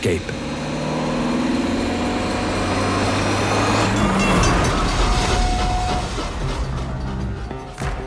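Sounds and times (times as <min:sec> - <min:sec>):
speech: 0:00.0 - 0:00.4
speeding car engine roaring: 0:00.0 - 0:07.6
heavy train passing: 0:03.1 - 0:07.4.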